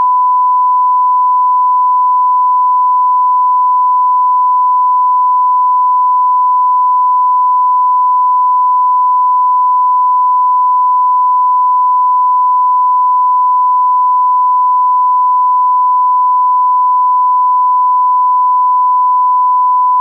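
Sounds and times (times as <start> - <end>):
1000Hz stereo sine tone: 0.0 - 20.0.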